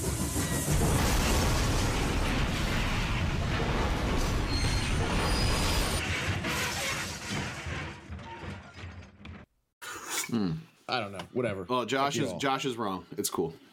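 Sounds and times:
train wreck sound effect with crashing metal and screeching: 0:00.1 - 0:08.3
speech: 0:10.3 - 0:13.7.

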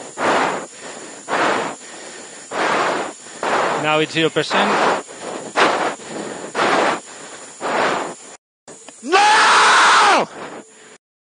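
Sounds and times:
hissing team radio static: 0:00.0 - 0:09.0
speech: 0:03.8 - 0:04.9
racing driver screaming over crackly team radio during a race weekend: 0:09.0 - 0:10.3.

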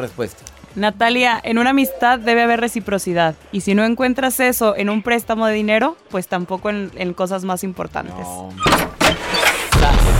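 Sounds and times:
speech: 0:00.0 - 0:08.9
door slamming shut: 0:08.6 - 0:10.1.

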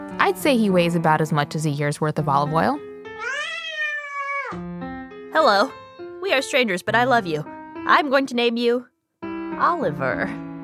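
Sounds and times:
speech: 0:00.3 - 0:03.4, 0:05.4 - 0:08.9, 0:09.6 - 0:10.4
cat meowing: 0:03.2 - 0:04.6.

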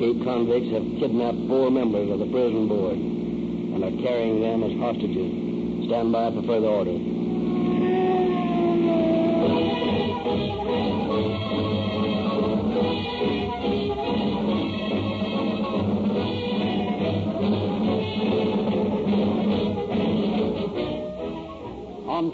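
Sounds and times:
speech: 0:00.0 - 0:07.2, 0:22.2 - 0:22.3
several police car sirens wailing as cars chase fleeing convicts: 0:07.2 - 0:22.3.

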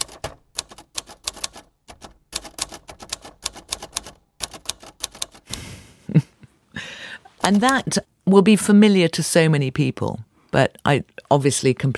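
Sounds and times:
typewriter key strikes: 0:00.0 - 0:05.6
speech: 0:07.5 - 0:11.9.

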